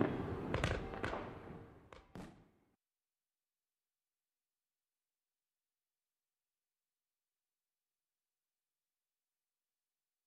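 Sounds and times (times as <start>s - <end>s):
sharp New Year's fireworks bangs: 0.0s - 2.6s.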